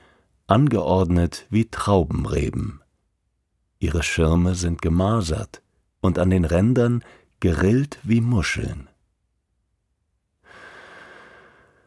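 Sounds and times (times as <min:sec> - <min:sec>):
speech: 0:00.5 - 0:02.8, 0:03.8 - 0:08.9
deep breath in by a person walking through a forest in Patagonia: 0:07.0 - 0:07.3, 0:10.4 - 0:11.8.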